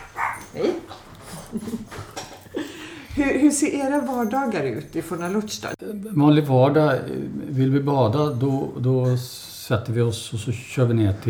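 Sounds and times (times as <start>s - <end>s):
small visiting dog whimpering: 0.0s - 1.0s
small visiting dog panting: 0.0s - 3.4s
speech: 3.2s - 11.2s.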